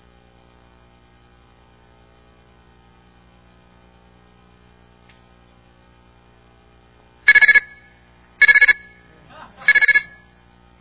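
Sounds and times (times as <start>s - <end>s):
phone ringtone of bright electronic trills: 7.3s - 7.8s, 8.4s - 9.0s, 9.6s - 10.3s
faint murmur: 9.0s - 10.2s.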